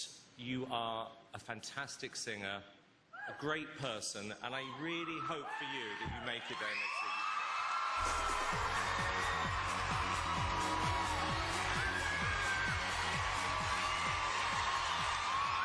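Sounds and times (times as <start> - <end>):
speech: 0.4 - 7.0
large crowd applauding and cheering after a song: 4.7 - 15.6.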